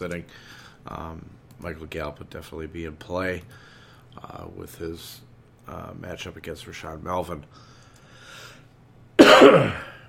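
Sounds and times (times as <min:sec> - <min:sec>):
speech: 0:00.0 - 0:07.7, 0:09.3 - 0:09.9
harsh raspy cough: 0:09.2 - 0:10.0.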